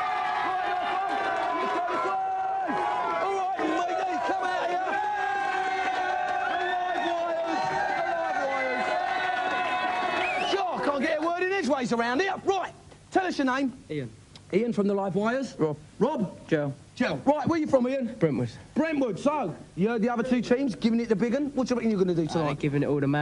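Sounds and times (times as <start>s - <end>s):
crowd cheering with shouts and whoops: 0.0s - 11.4s
speech: 11.7s - 23.1s.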